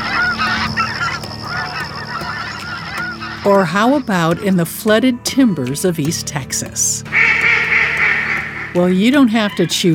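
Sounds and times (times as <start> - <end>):
flock of waterfowl honking: 0.0 - 4.6, 7.1 - 9.9
speech: 3.4 - 7.3, 8.7 - 9.9.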